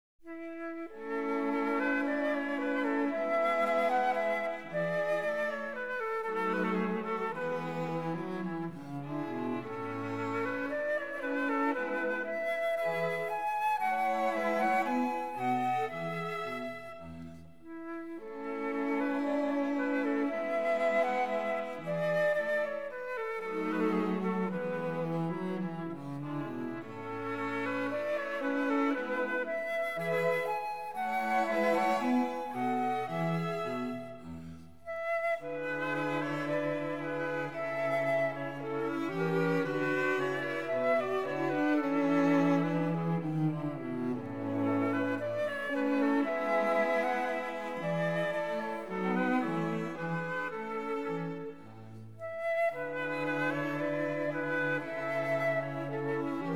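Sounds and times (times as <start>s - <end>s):
flute violin viola and cello quartet playing: 0.2s - 56.5s.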